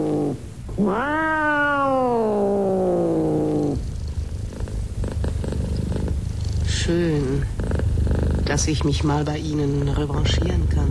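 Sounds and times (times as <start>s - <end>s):
black cat meowing in greeting: 0.0s - 3.8s
black cat purring: 0.0s - 10.8s
speech: 0.8s - 1.3s, 6.9s - 7.5s, 8.5s - 10.8s.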